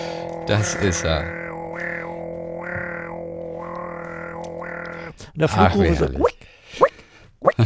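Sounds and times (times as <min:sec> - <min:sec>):
European nightjar churring song: 0:00.0 - 0:05.9
speech: 0:00.5 - 0:01.4, 0:05.4 - 0:06.9.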